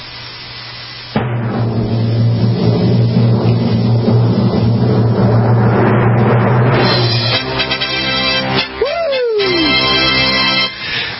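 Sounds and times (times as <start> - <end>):
drum roll: 1.1 - 10.5
brassy trumpet fanfare: 6.8 - 10.8.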